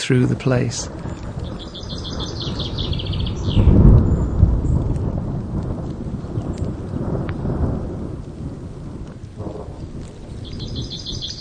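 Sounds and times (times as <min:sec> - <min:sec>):
deep rumble of thunder: 0:00.0 - 0:11.3
steady hiss of falling rain: 0:00.0 - 0:11.3
speech: 0:00.1 - 0:01.2
faint bird chirps: 0:01.0 - 0:04.8, 0:10.4 - 0:11.3.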